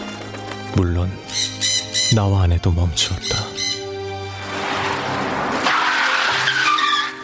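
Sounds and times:
speech: 0.8s - 1.5s, 2.1s - 3.5s
car tires screeching and skidding under hard braking: 5.0s - 7.2s.

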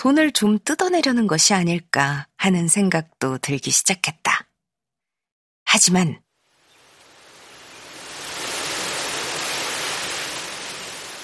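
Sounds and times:
speech: 0.0s - 4.5s, 5.7s - 6.2s
wind blowing through trees: 6.3s - 11.2s.

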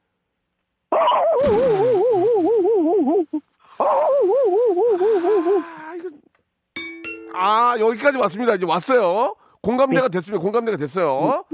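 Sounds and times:
person imitating a country dog barking: 0.9s - 6.2s, 11.2s - 11.5s
speech: 7.8s - 11.5s.

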